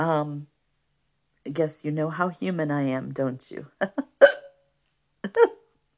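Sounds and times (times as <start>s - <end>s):
speech: 0.0s - 0.5s, 1.4s - 4.1s, 5.2s - 5.6s
person hiccuping: 4.0s - 4.6s, 5.2s - 5.7s.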